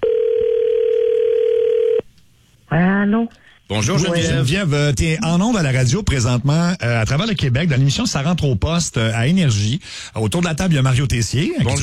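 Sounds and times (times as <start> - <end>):
telephone dial tone as a call is placed from a radio studio: 0.0 - 2.0
speech: 2.7 - 11.8.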